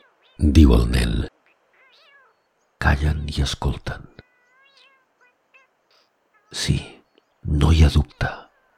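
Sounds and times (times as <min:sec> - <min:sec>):
cat meowing insistently: 0:00.0 - 0:00.6, 0:01.5 - 0:02.5, 0:04.2 - 0:06.7
speech: 0:00.4 - 0:01.4, 0:02.9 - 0:04.2, 0:06.5 - 0:08.4.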